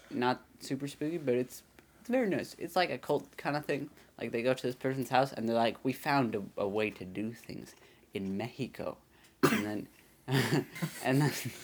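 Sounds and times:
speech: 0:00.1 - 0:11.6
person clearing throat: 0:09.4 - 0:11.1
person coughing: 0:09.4 - 0:11.3.

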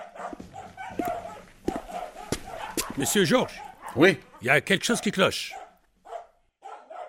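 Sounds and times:
dog whiny yips: 0:00.0 - 0:04.4, 0:05.5 - 0:07.0
dog barking: 0:00.0 - 0:07.0
speech: 0:03.0 - 0:05.6.

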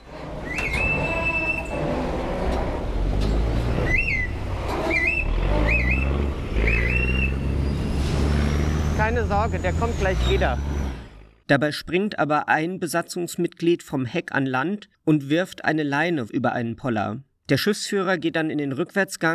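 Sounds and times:
river ferry engine rumbling as it passes a pier: 0:00.0 - 0:11.4
shrill ferry whistle: 0:00.4 - 0:01.8, 0:03.8 - 0:07.8
speech: 0:09.1 - 0:10.8, 0:11.5 - 0:19.3.

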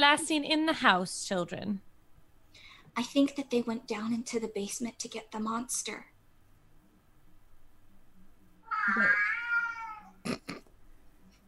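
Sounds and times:
speech: 0:00.0 - 0:01.9, 0:03.0 - 0:06.1, 0:08.8 - 0:09.4
cat meowing indoors at home: 0:08.6 - 0:10.2.

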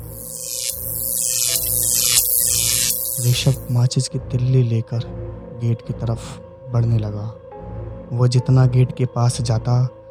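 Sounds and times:
harsh crackling electric zaps sweeping down in pitch: 0:00.0 - 0:03.8
steady electrical short circuit buzz: 0:00.0 - 0:03.8
speech: 0:03.2 - 0:07.5, 0:08.1 - 0:10.0.

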